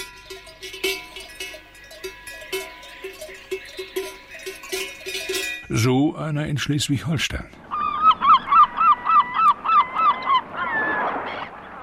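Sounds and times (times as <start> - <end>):
cowbells clanking on grazing animals in the Bavarian Alps: 0.0 - 6.7
birdsong: 0.0 - 11.8
speech: 5.7 - 7.6.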